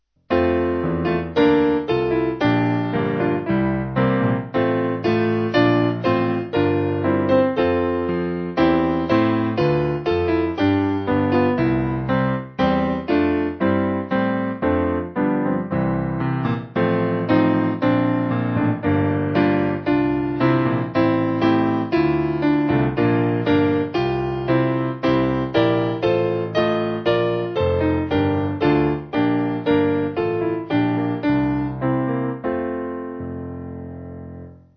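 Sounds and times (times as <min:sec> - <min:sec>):
piano church music backing: 0:00.3 - 0:34.7.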